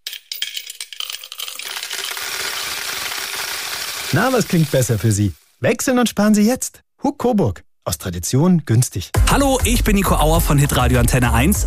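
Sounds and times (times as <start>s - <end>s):
coins dropping into a piggy bank: 0.0s - 5.3s
speech: 4.1s - 11.6s.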